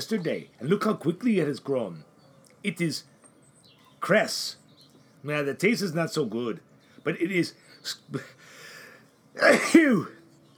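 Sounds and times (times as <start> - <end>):
speech: 0.0 - 3.1, 4.0 - 4.6, 5.2 - 8.6, 9.4 - 10.2
person sneezing: 9.4 - 10.1.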